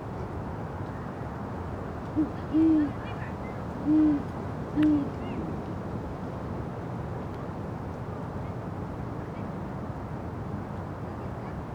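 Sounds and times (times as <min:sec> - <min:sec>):
steady low background hiss: 0:00.0 - 0:11.7
great horned owl hooting at dusk on Bernal Hill, San Francisco: 0:03.8 - 0:05.1.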